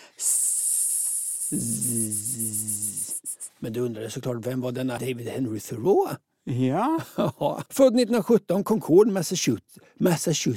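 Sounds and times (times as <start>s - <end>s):
voice imitating cricket buzz: 0.0s - 3.6s
speech: 1.5s - 2.9s, 3.6s - 10.5s.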